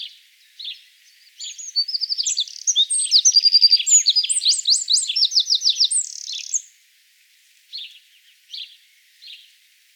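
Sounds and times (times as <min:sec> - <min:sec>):
Eurasian wren singing loud explosive song of rapid high trills and warbles: 0:00.0 - 0:06.7.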